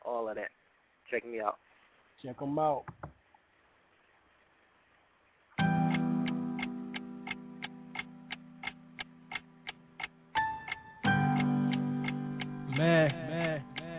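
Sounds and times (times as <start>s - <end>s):
speech: 0.1s - 3.0s
clock ticking: 5.7s - 13.9s.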